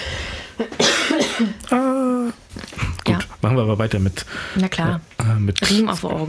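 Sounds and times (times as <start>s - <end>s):
person coughing in raspy bursts: 0.6s - 2.0s
short drawn-out voiced throat sound: 0.8s - 3.0s
speech: 3.4s - 6.2s.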